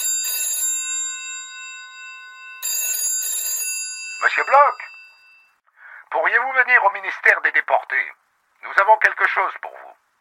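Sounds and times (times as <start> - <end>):
old-fashioned telephone bell ringing: 0.0 - 5.6
speech: 4.2 - 4.9, 6.1 - 9.7.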